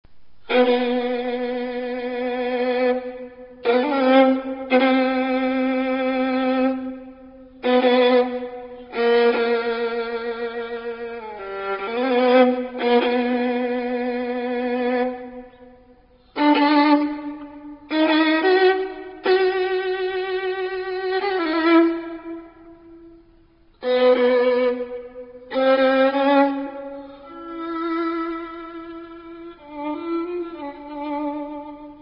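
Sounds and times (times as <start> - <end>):
violin: 0.4 - 31.9.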